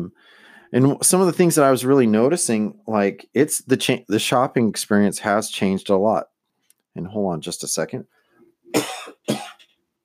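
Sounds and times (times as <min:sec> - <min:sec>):
speech: 0:00.0 - 0:06.3, 0:07.0 - 0:08.9
forceful coughs: 0:08.7 - 0:09.7.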